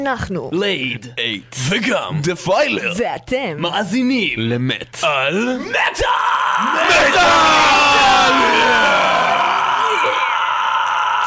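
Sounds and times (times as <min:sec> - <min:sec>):
speech: 0:00.0 - 0:09.1
man screaming a long drawn-out scream: 0:05.6 - 0:11.2.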